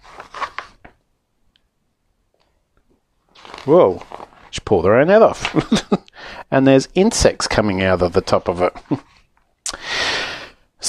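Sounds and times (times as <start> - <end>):
raspy tearing like dry paper ripping: 3.3 - 4.5
speech: 3.6 - 4.1, 4.7 - 9.1.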